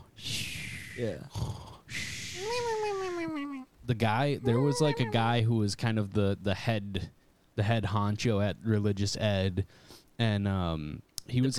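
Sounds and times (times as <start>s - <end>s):
person faking snoring with their voice: 0.3s - 2.5s
speech: 1.0s - 1.6s, 2.4s - 11.5s
person's short voiced whine: 2.2s - 3.7s, 4.4s - 5.4s.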